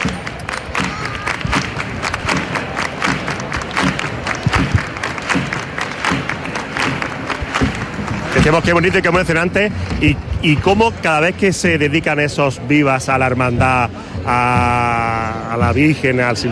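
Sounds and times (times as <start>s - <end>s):
large outdoor crowd clapping in rhythm in a square: 0.0s - 11.6s
murmur of voices: 0.0s - 16.5s
speech: 8.4s - 16.5s.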